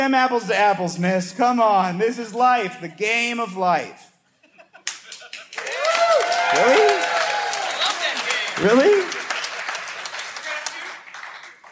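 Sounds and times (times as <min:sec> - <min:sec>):
speech: 0:00.0 - 0:04.1, 0:08.6 - 0:09.2
audience applauding: 0:04.9 - 0:11.7.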